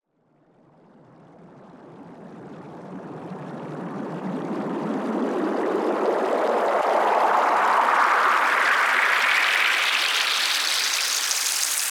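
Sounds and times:
water riser effect: 0:05.1 - 0:11.8.

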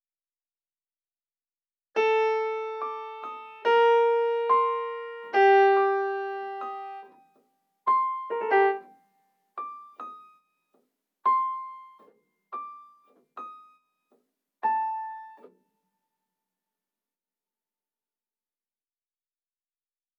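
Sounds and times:
piano melody in G minor for drill music: 0:02.0 - 0:07.3, 0:07.9 - 0:09.0, 0:11.3 - 0:12.0, 0:14.6 - 0:15.4.

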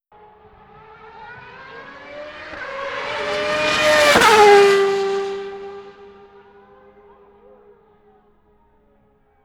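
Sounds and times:
single Top Fuel dragster passing fast: 0:00.5 - 0:06.4.

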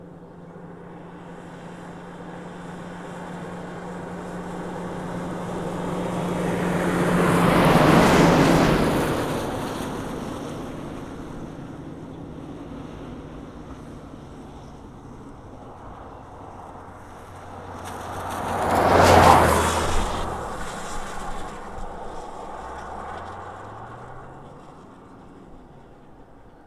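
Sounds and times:
car passing fast on wet road: 0:01.3 - 0:11.8, 0:12.4 - 0:26.6.

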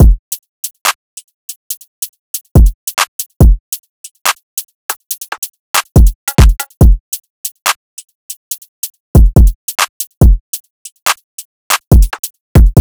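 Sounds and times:
drill drum loop at 141 BPM: 0:05.0 - 0:07.0, 0:09.2 - 0:10.6, 0:11.7 - 0:12.7.

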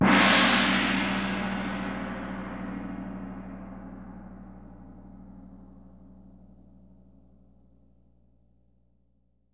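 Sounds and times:
gong in C: 0:00.0 - 0:04.7.

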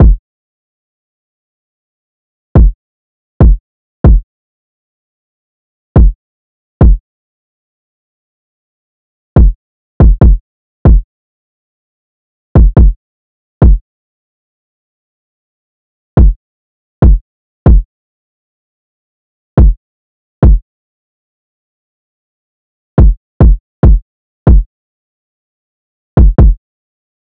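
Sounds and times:
kick drum loop: 0:00.0 - 0:00.2, 0:02.6 - 0:02.8, 0:03.4 - 0:04.2, 0:06.0 - 0:06.2, 0:06.8 - 0:07.0, 0:09.4 - 0:11.0, 0:12.6 - 0:13.0, 0:17.0 - 0:17.8, 0:20.4 - 0:20.6, 0:23.0 - 0:24.7, 0:26.2 - 0:26.6.

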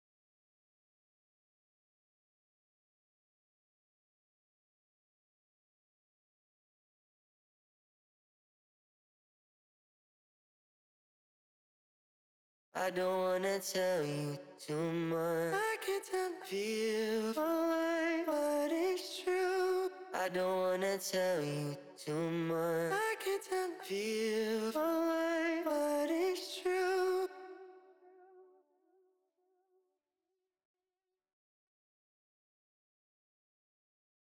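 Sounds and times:
sad vocal melody loop in B minor: 0:12.8 - 0:27.6.

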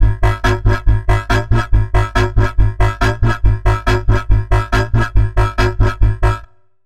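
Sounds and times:
dubstep bassline in C3 at 140: 0:00.0 - 0:06.4.

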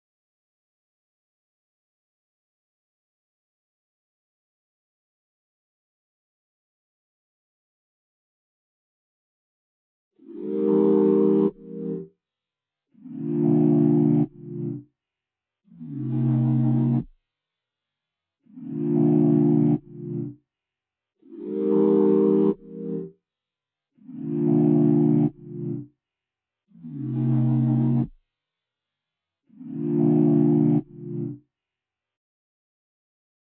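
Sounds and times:
sine chords in C minor R and B melody loop: 0:10.4 - 0:12.1, 0:13.1 - 0:14.8, 0:15.8 - 0:17.1, 0:18.6 - 0:20.4, 0:21.4 - 0:23.1, 0:24.2 - 0:25.9, 0:26.9 - 0:28.1, 0:29.7 - 0:31.4.

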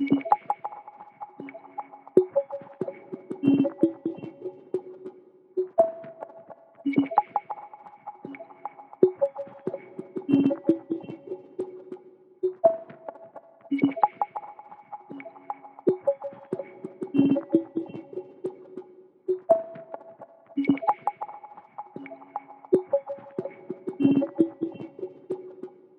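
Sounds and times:
C sharp minor synth blip melody loop at 140 BPM: 0:00.0 - 0:04.6, 0:06.9 - 0:11.8, 0:13.7 - 0:18.6, 0:20.6 - 0:25.5.

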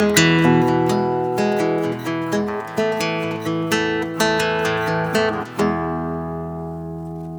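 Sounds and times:
acoustic guitar playing in G major: 0:00.0 - 0:07.3.

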